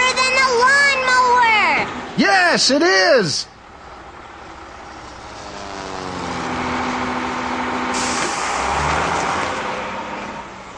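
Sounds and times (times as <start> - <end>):
loud truck engine droning: 0.0 - 10.7
speech: 2.2 - 3.5
sharp hissing burst like a truck air brake: 7.9 - 8.6.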